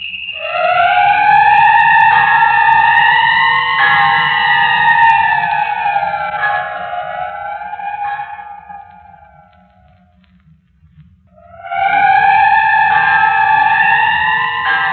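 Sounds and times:
whistle blowing: 0.0s - 10.1s, 11.3s - 14.9s
low rumble: 0.1s - 14.7s.

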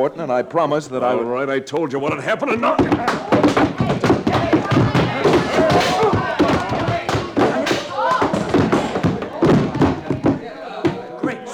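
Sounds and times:
speech: 0.0s - 3.8s
heavy thuds and punches landing in a scuffle: 2.1s - 11.1s
people grunting: 2.2s - 11.5s.

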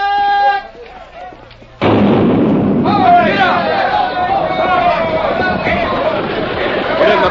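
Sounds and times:
crowd shouting and cheering: 0.0s - 1.6s, 2.4s - 7.2s
starting cannon firing: 1.8s - 7.2s.

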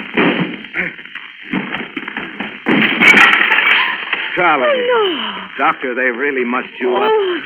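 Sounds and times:
door being crashed down with splintering impacts: 1.5s - 4.6s
speech: 4.4s - 7.4s.

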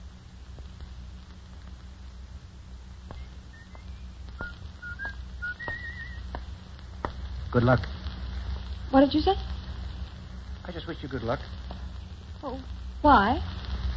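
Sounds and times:
steady patter of rain-like noise: 0.0s - 13.9s
person whistling a short tune: 3.5s - 6.2s
speech: 7.6s - 8.0s, 8.9s - 9.6s, 10.8s - 11.6s, 12.4s - 13.5s.

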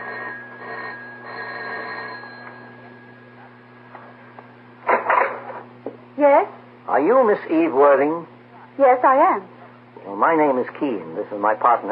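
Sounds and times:
studio apartment doorbell buzzing: 0.0s - 3.9s
steady hum: 0.0s - 11.8s
speech: 6.2s - 11.8s.

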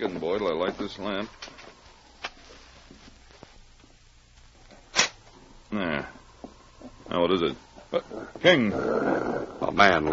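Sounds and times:
speech: 0.0s - 1.6s, 5.7s - 6.2s, 7.1s - 10.1s
dog growling: 7.9s - 10.1s.

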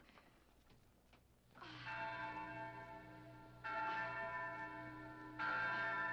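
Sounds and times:
large bell ringing to summon men: 1.7s - 6.1s.

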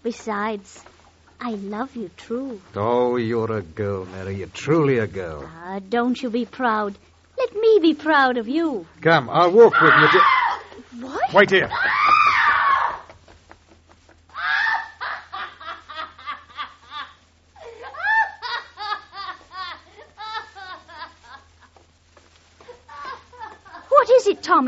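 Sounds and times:
speech: 0.0s - 7.1s, 7.7s - 10.4s, 11.0s - 12.0s
drunken woman screaming high-pitched: 9.7s - 13.1s, 14.4s - 15.4s, 17.8s - 18.6s.

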